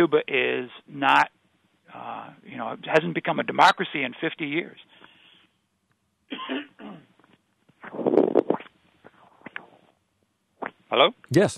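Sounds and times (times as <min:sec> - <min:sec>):
speech: 0:00.0 - 0:04.9, 0:10.9 - 0:11.5
small coughs: 0:06.3 - 0:07.2
throat clearing: 0:06.3 - 0:07.2.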